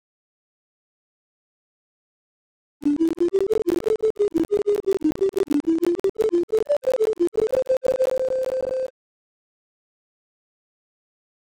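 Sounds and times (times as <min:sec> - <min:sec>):
wavesynth tune: 0:02.8 - 0:08.9.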